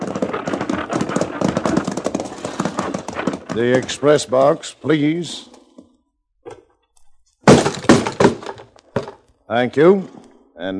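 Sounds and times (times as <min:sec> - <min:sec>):
stagecoach horse hooves clip-clopping: 0:00.0 - 0:04.6
stagecoach rolling along a stagecoach road: 0:00.0 - 0:04.6
speech: 0:03.6 - 0:05.5, 0:09.5 - 0:10.7.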